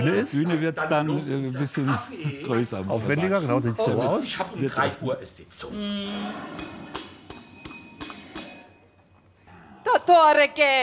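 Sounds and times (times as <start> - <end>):
speech: 0.0 - 6.8, 10.1 - 10.8
bell being struck: 6.6 - 9.0.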